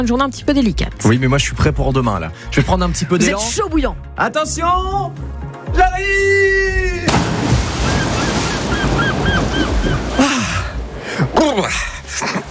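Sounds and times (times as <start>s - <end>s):
speech: 0.0s - 7.2s, 11.4s - 12.5s
surf washing: 7.1s - 12.5s
seagulls crying: 7.7s - 10.7s.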